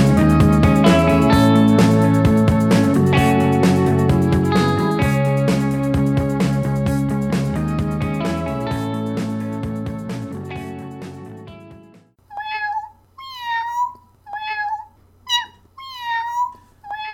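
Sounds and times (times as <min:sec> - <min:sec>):
music: 0:00.0 - 0:12.2
cat meowing: 0:12.3 - 0:17.1.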